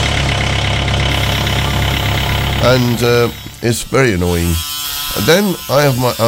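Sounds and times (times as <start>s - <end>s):
diesel engine starting and idling: 0.0s - 4.3s
speech: 2.6s - 6.2s.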